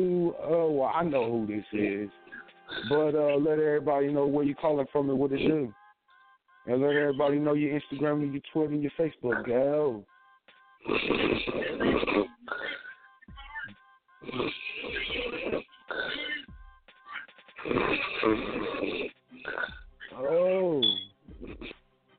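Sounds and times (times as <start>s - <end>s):
speech: 0.0s - 5.8s, 6.6s - 10.1s, 10.8s - 16.4s, 17.6s - 21.8s
person snoring loudly over a tinny phone line: 2.3s - 3.0s, 10.8s - 13.0s, 14.3s - 16.2s, 17.6s - 19.8s.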